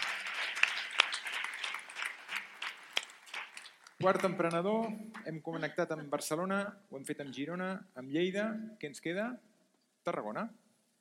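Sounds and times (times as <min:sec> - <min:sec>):
crowd applauding: 0:00.0 - 0:06.0
speech: 0:04.0 - 0:10.6.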